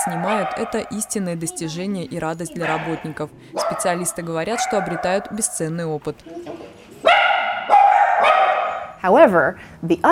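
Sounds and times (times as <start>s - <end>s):
speech: 0.0s - 6.7s, 9.0s - 10.0s
dog whining yelps: 7.0s - 9.0s.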